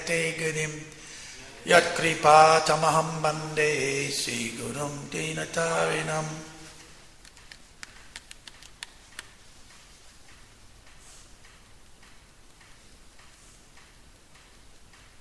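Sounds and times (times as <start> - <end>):
speech: 0.0 - 1.0, 1.6 - 6.5
constant hiss of noise: 0.0 - 15.1
clock ticking: 8.8 - 15.1.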